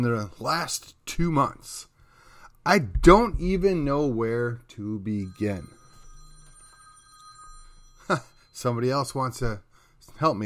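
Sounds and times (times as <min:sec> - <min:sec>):
speech: 0:00.0 - 0:01.9, 0:02.6 - 0:05.8, 0:08.1 - 0:10.4
low hum: 0:02.9 - 0:08.5
telephone ringing with an electronic tone: 0:05.1 - 0:09.7.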